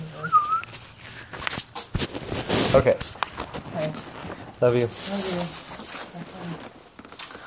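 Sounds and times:
person whistling imitating a bird call: 0:00.2 - 0:00.6
speech: 0:02.7 - 0:05.7.

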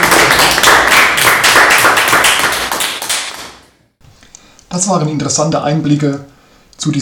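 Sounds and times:
small group clapping: 0:00.0 - 0:03.8
speech: 0:04.8 - 0:06.9.

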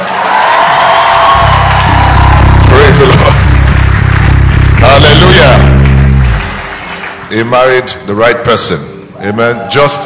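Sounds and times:
audience cheering with raised voices: 0:00.0 - 0:07.2
audience clapping: 0:00.0 - 0:08.3
speech: 0:07.3 - 0:10.0.

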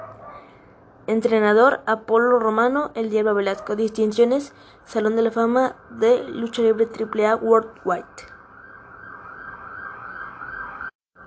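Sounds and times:
speech: 0:01.1 - 0:08.3
loud electronic alarm blaring in a wavering tone: 0:06.4 - 0:11.2.

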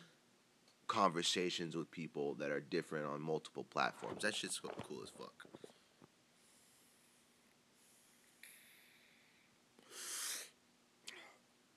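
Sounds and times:
speech: 0:01.0 - 0:05.8
person inhaling Strawberry Cough cannabis smoke: 0:07.8 - 0:10.6.

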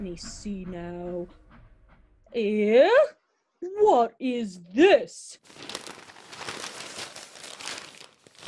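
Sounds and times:
speech: 0:00.0 - 0:01.4, 0:02.3 - 0:05.8
newspaper pages rustling and crinkling on a train: 0:05.4 - 0:08.4.

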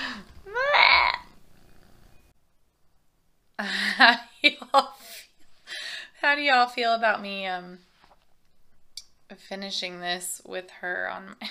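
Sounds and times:
domestic cat purring: 0:01.3 - 0:02.3
speech: 0:03.6 - 0:07.9, 0:09.3 - 0:11.4.

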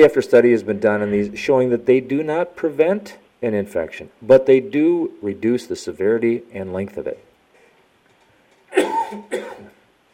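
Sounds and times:
speech: 0:00.0 - 0:07.3
person coughing hoarsely: 0:08.7 - 0:09.8.

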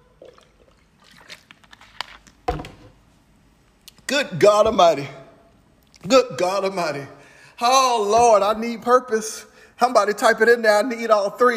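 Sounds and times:
sipping water: 0:00.0 - 0:02.2
speech: 0:04.1 - 0:05.2, 0:06.0 - 0:11.5.

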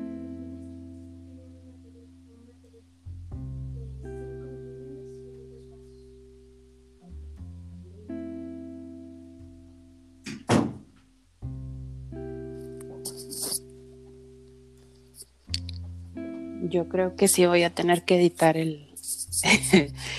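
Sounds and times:
sustained tonal hum: 0:00.0 - 0:10.0, 0:12.1 - 0:20.1
door thudding shut: 0:10.2 - 0:11.0
speech: 0:16.7 - 0:20.1
laughter: 0:19.4 - 0:20.1.

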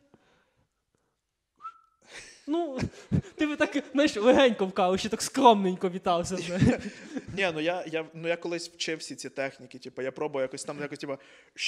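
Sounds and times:
attempted whistling: 0:01.6 - 0:02.1
laughter: 0:02.1 - 0:04.6, 0:06.3 - 0:07.7
speech: 0:02.4 - 0:11.6.

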